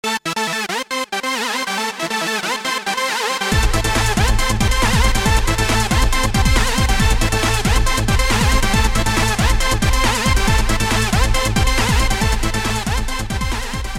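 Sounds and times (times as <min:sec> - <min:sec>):
synthesizer brass sound with dynamically controlled portamento: 0:00.0 - 0:13.9.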